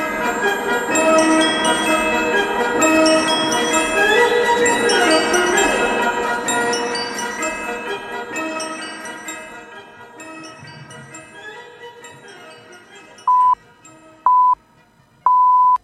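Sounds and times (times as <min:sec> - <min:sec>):
music: 0:00.0 - 0:15.8
radio hourly time signal beeps: 0:13.3 - 0:13.6, 0:14.3 - 0:14.6, 0:15.3 - 0:15.8.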